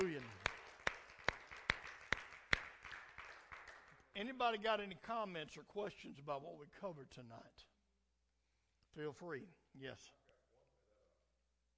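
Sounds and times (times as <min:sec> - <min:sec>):
small group clapping hands in unison: 0:00.0 - 0:04.1
speech: 0:04.2 - 0:07.7, 0:09.0 - 0:10.2.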